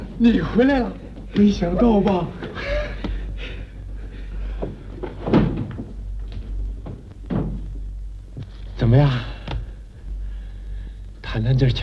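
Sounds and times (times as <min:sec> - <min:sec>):
speech: 0:00.2 - 0:02.7, 0:08.9 - 0:09.3, 0:11.4 - 0:11.8
door being opened with dull thumps and wooden clunks: 0:04.6 - 0:07.8.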